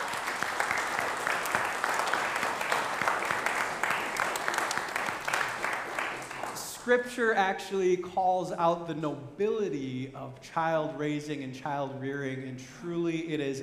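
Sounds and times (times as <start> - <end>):
audience applause in a large room: 0.0 - 6.7
speech: 6.9 - 13.6.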